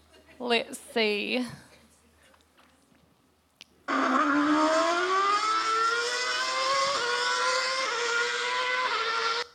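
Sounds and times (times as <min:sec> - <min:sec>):
speech: 0:00.4 - 0:01.6
Formula One car engine screaming with gear shifts: 0:03.9 - 0:09.5.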